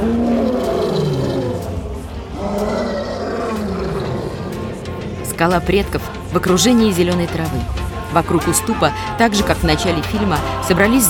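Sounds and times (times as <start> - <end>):
lion and lionesses roaring in an animated film: 0.0 - 5.2
speech: 5.4 - 11.0.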